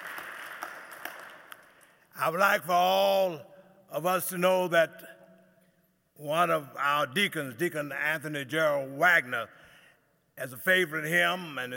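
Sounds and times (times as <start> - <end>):
crowd applause: 0.0 - 1.8
speech: 2.2 - 5.1, 6.2 - 9.6, 10.4 - 11.7.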